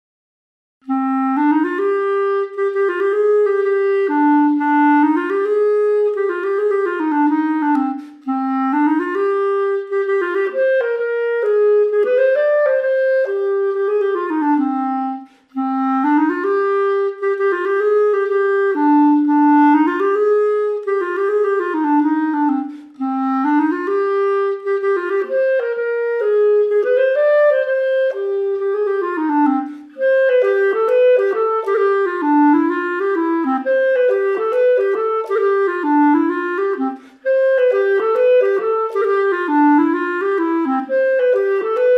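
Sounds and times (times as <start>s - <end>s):
clarinet: 0.8s - 41.9s.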